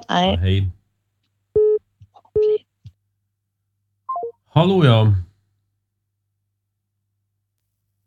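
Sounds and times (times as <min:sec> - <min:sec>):
speech: 0:00.1 - 0:00.8, 0:04.6 - 0:05.2
telephone busy tone beeps after caller hangs up: 0:04.1 - 0:04.4.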